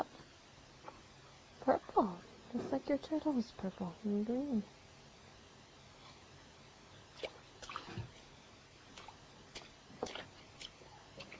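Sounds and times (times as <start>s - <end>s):
speech: 2.0s - 4.8s
child splashing water: 7.2s - 8.2s, 9.0s - 11.3s.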